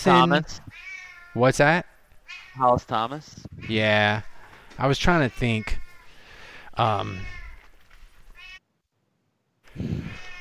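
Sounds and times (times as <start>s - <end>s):
speech: 0.0s - 1.9s, 2.6s - 5.8s, 6.8s - 7.4s, 9.8s - 10.2s
cats meowing loudly: 0.1s - 1.5s, 2.2s - 2.8s, 5.0s - 6.2s, 6.8s - 7.7s, 8.3s - 8.6s, 10.0s - 10.3s.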